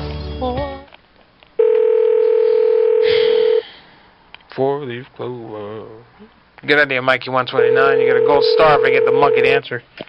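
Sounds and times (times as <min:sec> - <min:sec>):
telephone dial tone: 0:01.6 - 0:03.6, 0:07.6 - 0:09.6
speech: 0:04.6 - 0:10.0.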